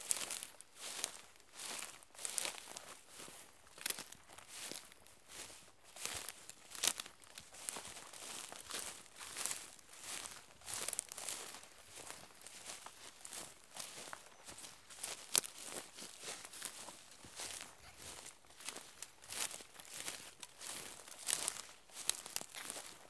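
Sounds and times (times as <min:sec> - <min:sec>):
footsteps on tall grass: 0:00.1 - 0:23.0.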